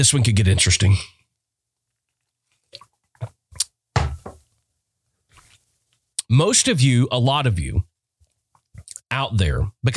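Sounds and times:
speech: 0.0s - 1.2s, 6.3s - 7.9s, 9.1s - 9.9s
soft clunks of a coffee cup being handled: 4.0s - 4.4s.

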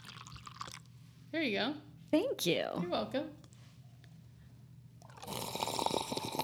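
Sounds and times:
coffee being poured into a cup: 0.0s - 0.9s, 5.0s - 6.4s
speech: 1.3s - 3.4s.

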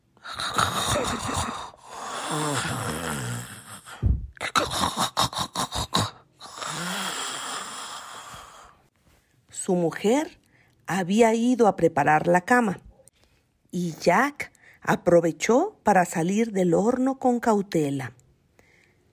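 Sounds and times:
voice imitating an ogre's loud snoring: 0.2s - 8.8s
speech: 2.3s - 4.1s, 9.7s - 12.8s, 13.7s - 18.2s.

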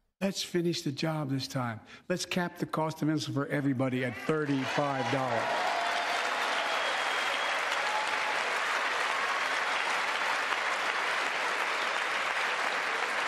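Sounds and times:
speech: 0.2s - 5.8s
large audience applauding at a speech: 4.4s - 13.2s.

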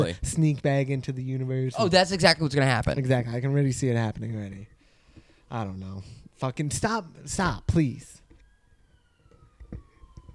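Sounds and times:
speech: 0.0s - 4.8s, 5.5s - 8.2s
ambulance siren wailing: 3.2s - 10.3s.

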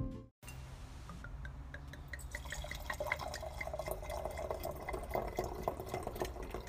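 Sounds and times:
small splashes and drips into a glass: 1.2s - 6.6s
wine glugging from a bottle into a glass: 1.3s - 6.6s.

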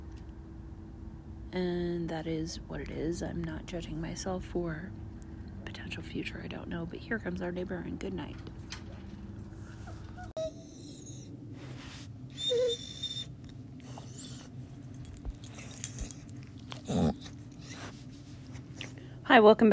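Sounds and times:
low hum: 0.0s - 19.7s
speech: 1.5s - 5.1s, 5.9s - 8.6s, 19.4s - 19.7s
dog whimpering forlornly: 9.5s - 11.3s, 12.3s - 14.6s, 16.7s - 17.9s
brief jangle: 14.7s - 16.5s.

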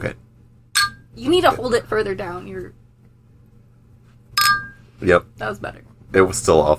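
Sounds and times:
speech: 0.0s - 0.2s, 1.2s - 2.8s, 5.0s - 6.7s
champagne glasses clinking in a toast: 0.8s - 1.1s, 4.4s - 4.8s.

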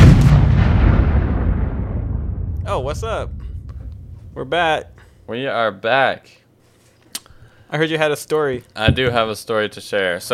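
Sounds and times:
bomb explosion sound effect: 0.0s - 5.2s
speech: 2.8s - 3.4s, 4.4s - 6.4s, 7.7s - 10.3s.

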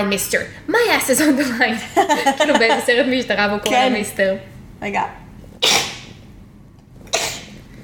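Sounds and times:
speech: 0.0s - 5.2s
laughter: 1.8s - 3.1s
sneezes: 5.6s - 6.2s, 7.1s - 7.6s.

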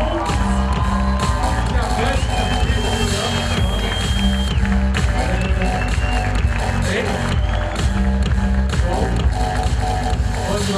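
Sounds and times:
audience cheering with scattered whoops: 0.0s - 8.2s
large audience applauding: 0.0s - 10.6s.

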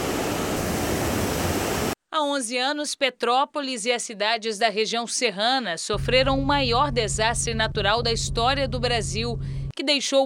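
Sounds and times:
rushing floodwater pouring down hillside: 0.0s - 2.0s
speech: 2.2s - 10.2s.

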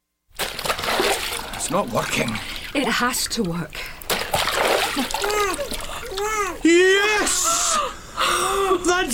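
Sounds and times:
water splashing and sloshing in a basin: 0.3s - 6.7s
speech: 1.7s - 3.9s, 5.0s - 9.1s
infant wailing: 5.2s - 6.7s.

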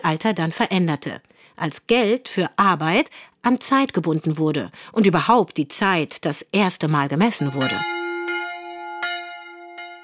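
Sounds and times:
speech: 0.0s - 8.0s
church bell ringing: 7.4s - 10.0s.

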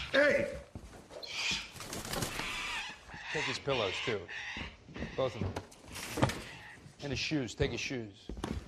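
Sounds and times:
speech: 0.1s - 0.7s, 3.4s - 6.3s, 7.0s - 8.5s
bird calling: 1.1s - 5.6s
soft fluttering rustles: 1.2s - 3.0s.

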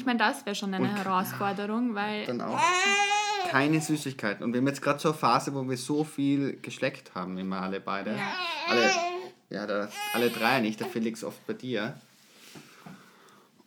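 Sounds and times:
speech: 0.0s - 12.6s
small boy fussing and whining: 2.5s - 3.9s, 8.1s - 9.3s, 9.9s - 11.0s.

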